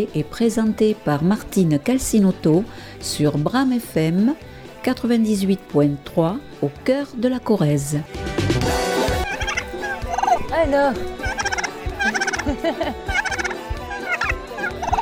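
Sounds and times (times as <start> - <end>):
speech: 0.0 - 8.8, 10.6 - 11.3, 12.0 - 13.4
turkeys gobbling: 9.0 - 15.0
person laughing: 11.2 - 15.0.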